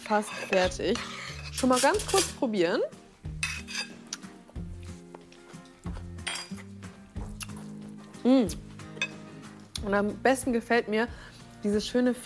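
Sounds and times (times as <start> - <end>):
utensil clinking against a bowl while mixing tuna sandwich filling: 0.0 - 2.4, 6.2 - 6.6, 9.0 - 9.2
speech: 0.1 - 3.0, 8.2 - 8.6, 9.8 - 12.2.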